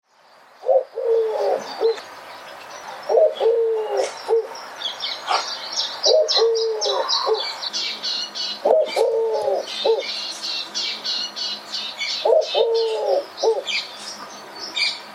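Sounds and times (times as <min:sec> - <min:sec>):
other birds busy high chirping and twittering: 0:00.0 - 0:15.1
mellow low cooing phrases: 0:00.7 - 0:02.0, 0:03.1 - 0:04.5, 0:06.1 - 0:07.5, 0:08.6 - 0:10.1, 0:12.3 - 0:13.7.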